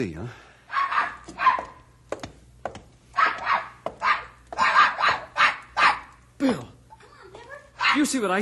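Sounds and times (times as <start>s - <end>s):
speech: 0.0s - 0.4s, 6.4s - 6.7s, 7.9s - 8.3s
dog barking and yipping: 0.7s - 1.8s, 3.2s - 6.2s, 7.8s - 8.2s.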